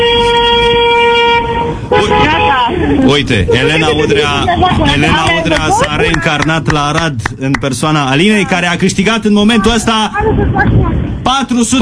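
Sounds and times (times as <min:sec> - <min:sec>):
taxi's car horn honking: 0:00.0 - 0:05.8
speech: 0:03.1 - 0:11.8.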